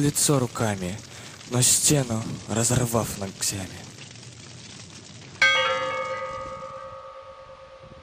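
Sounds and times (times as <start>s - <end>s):
speech: 0.0s - 4.1s
church bell strike: 5.4s - 8.0s.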